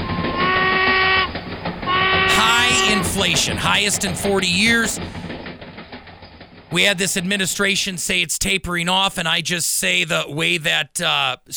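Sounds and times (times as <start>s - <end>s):
steam train whistle blowing multi-tone chord: 0.0s - 1.3s, 1.9s - 3.5s
steam train rumbling and chugging: 0.0s - 9.0s
speech: 3.2s - 5.3s, 6.7s - 11.5s.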